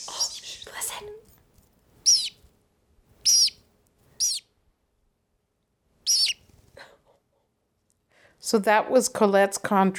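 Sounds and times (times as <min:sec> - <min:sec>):
small female pet bird singing and chirping: 0:02.0 - 0:02.4, 0:03.2 - 0:03.6, 0:04.2 - 0:04.5, 0:06.0 - 0:06.5
speech: 0:08.4 - 0:09.9.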